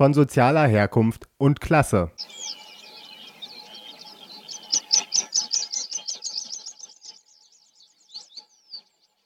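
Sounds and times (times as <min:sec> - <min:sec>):
speech: 0:00.0 - 0:02.6
meadow pipit singing: 0:02.2 - 0:09.2
soft meadow pipit calls: 0:02.2 - 0:09.2.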